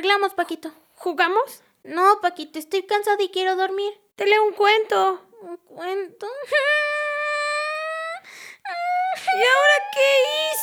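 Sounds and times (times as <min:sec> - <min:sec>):
speech: 0:00.0 - 0:06.9, 0:09.3 - 0:10.6
girl crying loudly: 0:06.3 - 0:10.6
girl's ragged gasping breath: 0:08.2 - 0:09.1
laughter: 0:08.7 - 0:10.6.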